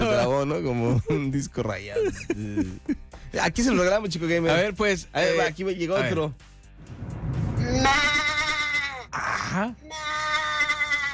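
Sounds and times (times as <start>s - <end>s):
speech: 0.4s - 7.1s, 7.7s - 8.2s, 9.2s - 10.4s
sheep bleating: 7.8s - 9.2s, 9.8s - 11.1s.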